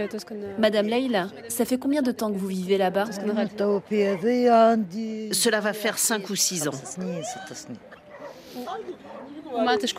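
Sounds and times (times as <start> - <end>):
speech: 0.0 - 8.0, 8.6 - 9.9
several dogs barking and yelping: 7.8 - 9.5.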